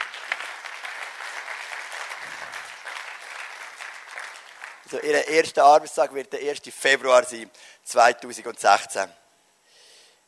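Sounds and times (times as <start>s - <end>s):
audience applause: 0.0s - 4.9s
speech: 4.9s - 9.2s.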